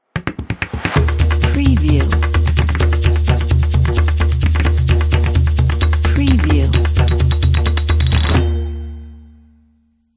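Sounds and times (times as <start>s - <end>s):
drums intro for a logo: 0.1s - 8.2s.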